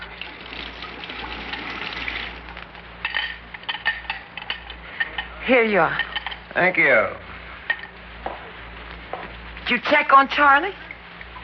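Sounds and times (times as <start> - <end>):
water pouring into a glass: 0.0 - 2.6
glass clinking and tapping as it is handled: 3.0 - 5.4
speech: 5.5 - 7.2, 9.7 - 10.8.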